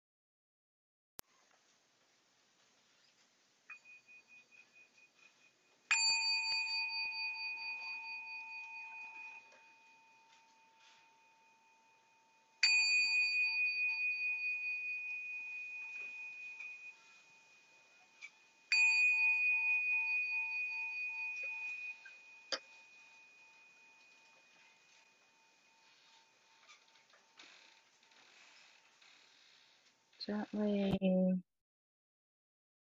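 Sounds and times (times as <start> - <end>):
meditation bell struck: 3.7 - 27.7
speech: 30.3 - 31.5.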